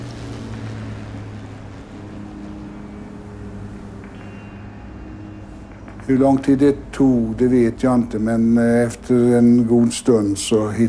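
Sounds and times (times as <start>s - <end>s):
broad rushing wash of water: 0.0s - 5.1s
low boat engine droning over open water: 0.0s - 9.6s
wind: 0.0s - 10.8s
speech: 6.1s - 10.8s.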